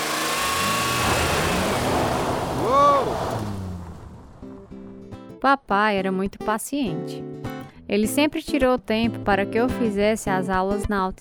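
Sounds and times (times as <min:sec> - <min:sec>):
car engine revving up as the clutch is released during a driving lesson: 0:00.0 - 0:05.0
speech: 0:05.4 - 0:11.1.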